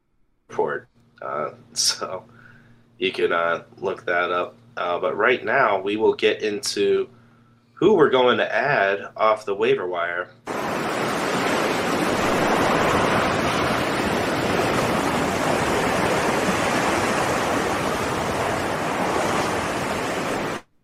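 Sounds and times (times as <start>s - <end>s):
speech: 0.7s - 2.4s, 3.0s - 7.2s, 7.8s - 10.4s
loud continuous ocean surf with crashing waves: 10.5s - 20.7s.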